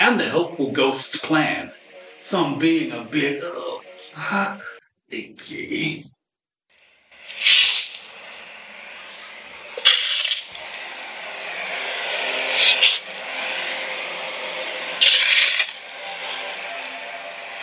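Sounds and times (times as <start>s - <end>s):
speech: 0.1s - 6.1s, 7.3s - 7.6s
constant low rushing background: 7.2s - 17.6s
shovel digging into dirt: 7.3s - 8.1s, 15.0s - 16.5s.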